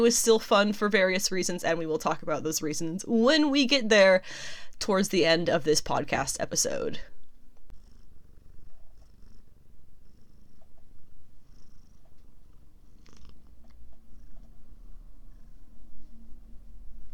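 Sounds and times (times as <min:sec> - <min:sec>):
speech: 0:00.0 - 0:07.1
cat purring: 0:06.7 - 0:17.1.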